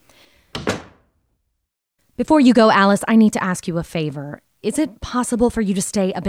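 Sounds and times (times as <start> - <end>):
door shutting: 0.4 - 1.2
door latch catching: 0.6 - 1.1
speech: 2.2 - 6.2.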